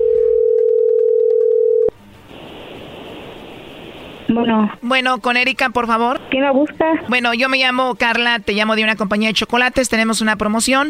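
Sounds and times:
steady telephone tone of an incoming call: 0:00.0 - 0:02.0
quiet telephone line noise: 0:01.9 - 0:10.5
speech: 0:04.3 - 0:10.8.

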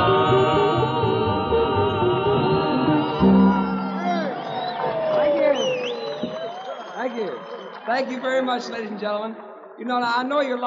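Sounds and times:
large crowd cheering and applauding: 0:00.0 - 0:09.0
shrill whistles: 0:02.1 - 0:08.6
whoops: 0:02.7 - 0:08.0
speech: 0:08.0 - 0:10.6.

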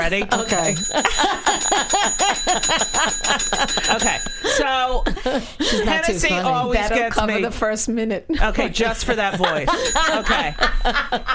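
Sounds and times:
laughter: 0:00.0 - 0:07.2, 0:08.3 - 0:11.3
speech: 0:00.0 - 0:11.3
small bell ringing rapidly: 0:00.3 - 0:04.8, 0:09.8 - 0:11.3.

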